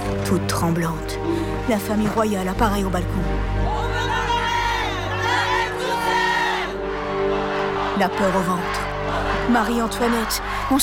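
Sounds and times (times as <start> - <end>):
speech: 0.3 - 3.8, 8.0 - 8.9, 9.5 - 10.8
large impatient crowd shouting in a courtyard: 4.2 - 10.8.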